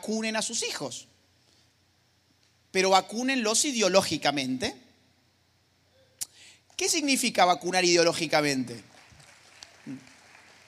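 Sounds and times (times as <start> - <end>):
speech: 0.0 - 1.2, 2.8 - 4.8, 6.8 - 8.9, 9.8 - 10.1
soft audience applause during a talk: 8.9 - 10.6.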